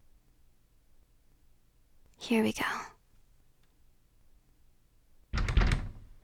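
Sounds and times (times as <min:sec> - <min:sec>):
speech: 0:02.2 - 0:02.9
locked door rattling as someone tries to open it: 0:05.4 - 0:06.2.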